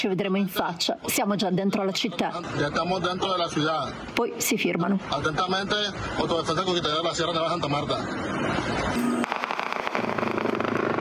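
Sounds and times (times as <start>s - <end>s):
speech: 0.0s - 9.2s
rapid volley of sharp gunshots: 9.0s - 10.9s
distant-sounding pops: 9.2s - 10.9s.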